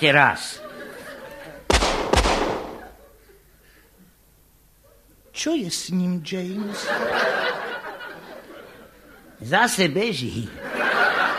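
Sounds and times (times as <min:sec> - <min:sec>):
speech: 0:00.0 - 0:00.7, 0:05.4 - 0:07.6, 0:09.4 - 0:10.8
laughter: 0:00.4 - 0:01.7, 0:02.6 - 0:03.9, 0:06.5 - 0:09.4, 0:10.3 - 0:11.3
gunshots: 0:01.7 - 0:03.0.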